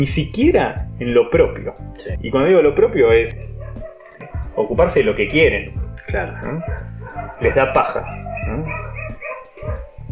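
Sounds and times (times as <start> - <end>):
speech: 0.0 - 3.5, 4.6 - 8.9
neighbour's dogs barking: 3.2 - 10.1.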